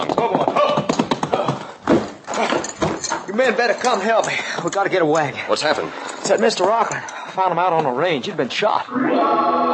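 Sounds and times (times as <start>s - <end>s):
ridden horse's hooves clip-clopping: 0.0s - 3.2s
speech: 3.4s - 9.6s.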